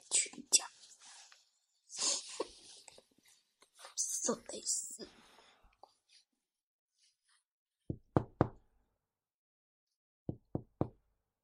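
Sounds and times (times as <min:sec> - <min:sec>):
speech: 0:04.3 - 0:04.9
firm sharp knocking on a door: 0:07.9 - 0:08.6, 0:10.3 - 0:11.0.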